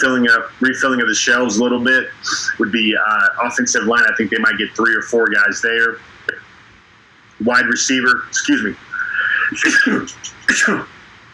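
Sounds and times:
speech: 0:00.0 - 0:06.4, 0:07.4 - 0:11.0
sharp sneeze with a breathy hiss: 0:02.2 - 0:02.6, 0:09.0 - 0:10.9
laughter: 0:02.2 - 0:02.8, 0:08.4 - 0:10.8.

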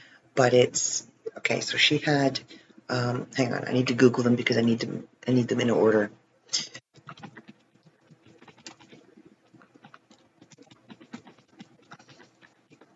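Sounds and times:
speech: 0:00.4 - 0:06.8
typing on a computer keyboard: 0:07.0 - 0:12.9.

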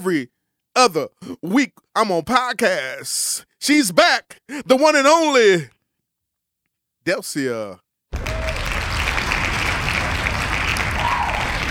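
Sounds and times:
speech: 0:00.0 - 0:05.8, 0:07.0 - 0:08.4
dense applause from many hands: 0:08.2 - 0:11.7.

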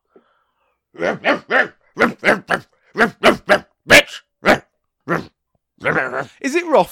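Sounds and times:
speech: 0:01.0 - 0:03.3, 0:06.8 - 0:06.9
person imitating a dog barking: 0:01.0 - 0:06.4.

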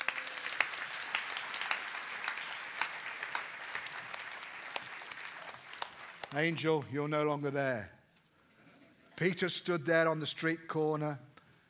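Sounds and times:
audience clapping: 0:00.0 - 0:06.9
speech: 0:06.3 - 0:08.0, 0:09.2 - 0:11.3.

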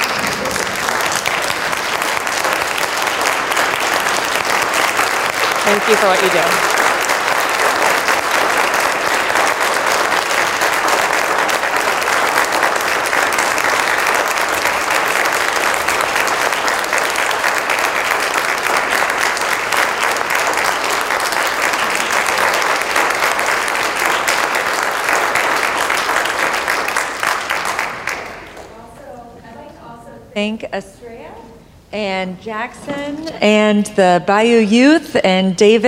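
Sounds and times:
large audience giving a standing ovation applause: 0:00.0 - 0:28.7
speech: 0:05.7 - 0:06.8, 0:30.4 - 0:31.0, 0:31.9 - 0:35.8.

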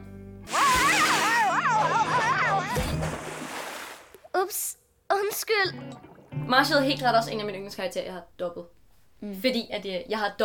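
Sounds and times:
water cannon spraying water: 0:00.5 - 0:01.6
laughter: 0:01.3 - 0:03.0
speech: 0:06.5 - 0:10.4.

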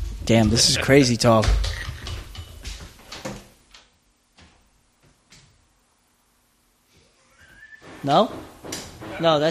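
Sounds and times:
speech: 0:00.3 - 0:01.8, 0:08.0 - 0:08.5, 0:09.2 - 0:09.4
hammering muffled by a wall: 0:07.8 - 0:09.3.

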